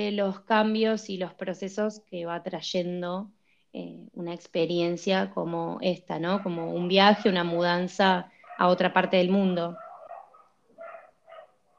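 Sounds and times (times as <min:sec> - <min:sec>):
speech: 0:00.0 - 0:09.8
dogs barking: 0:06.2 - 0:07.6, 0:08.3 - 0:11.7.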